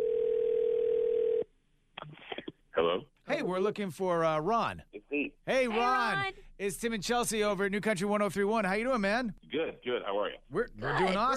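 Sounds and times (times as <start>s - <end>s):
phone ringing tone on an outgoing call: 0.0s - 1.5s
speech: 2.8s - 11.3s.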